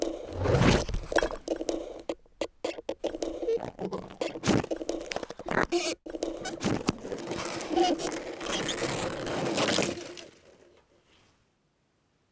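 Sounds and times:
microphone scraping and rubbing against a cactus: 0:00.2 - 0:01.5, 0:02.7 - 0:09.8.

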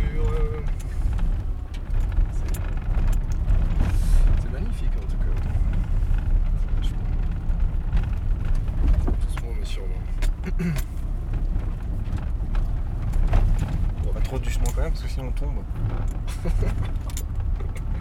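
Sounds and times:
Dacia car engine labouring at low revs up a rough steep track: 0:00.0 - 0:17.9
laughter: 0:16.3 - 0:16.9.

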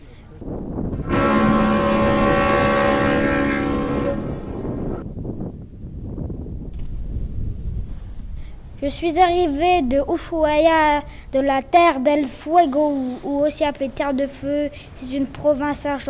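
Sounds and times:
icebreaker ship horn blast: 0:01.0 - 0:05.0
speech: 0:08.8 - 0:16.0.

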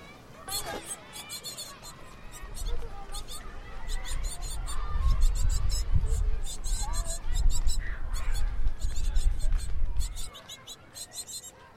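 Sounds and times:
faint murmuring voices of students leaving class: 0:00.0 - 0:11.7
nestling birds cheeping inside a high school building wall: 0:00.4 - 0:11.6.

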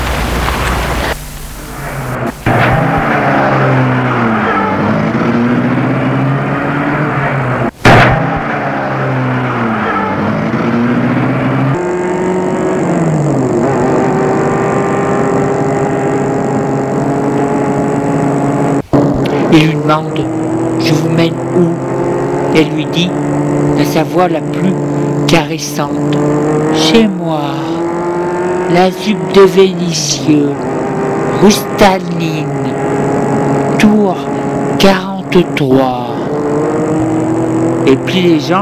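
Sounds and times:
car engine starting and driving with rising and falling revs: 0:00.0 - 0:38.6
sharp thump: 0:02.4 - 0:03.1, 0:07.8 - 0:08.5
speech: 0:19.6 - 0:21.7, 0:22.6 - 0:27.7, 0:28.7 - 0:30.8, 0:31.4 - 0:32.6, 0:34.1 - 0:36.0, 0:37.9 - 0:38.6.

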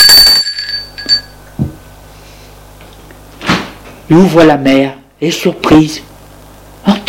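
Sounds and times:
apartment doorbell ringing with a bright metallic tone: 0:00.0 - 0:01.4
speech: 0:04.1 - 0:06.1.

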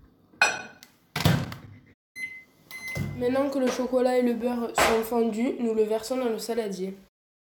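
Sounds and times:
microwave oven beeps: 0:02.2 - 0:03.2
speech: 0:03.2 - 0:07.1.

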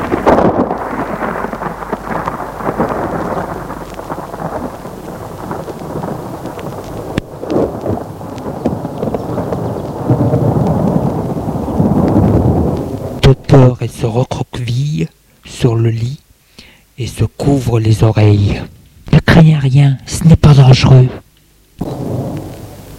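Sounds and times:
loud rumbling thunderclap during a thunderstorm: 0:00.0 - 0:14.6, 0:21.8 - 0:22.9
steady rain: 0:00.0 - 0:22.9
speech: 0:13.6 - 0:16.2, 0:17.0 - 0:18.7, 0:19.4 - 0:21.2.

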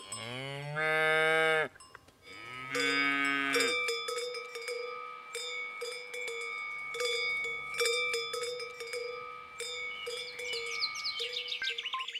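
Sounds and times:
cowbell clinking: 0:00.0 - 0:00.4, 0:01.7 - 0:12.1
cow mooing: 0:00.0 - 0:01.7, 0:02.3 - 0:03.8.

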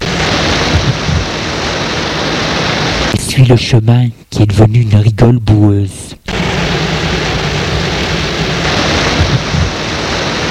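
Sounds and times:
wind gusts driving rain: 0:00.0 - 0:04.0, 0:06.2 - 0:10.4
heavy pouring rain in October: 0:00.0 - 0:10.4
speech: 0:03.4 - 0:06.2.

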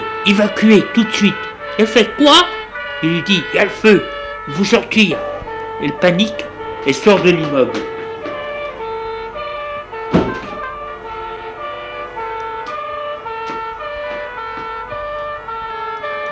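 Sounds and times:
fire engine siren wailing in two-tone pattern: 0:00.0 - 0:16.3
speech: 0:00.2 - 0:07.9
thump: 0:10.1 - 0:10.7.

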